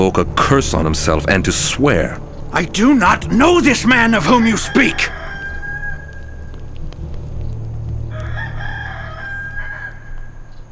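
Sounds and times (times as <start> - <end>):
speech: 0.0 - 5.2
rooster crowing: 4.2 - 6.6, 8.1 - 10.7.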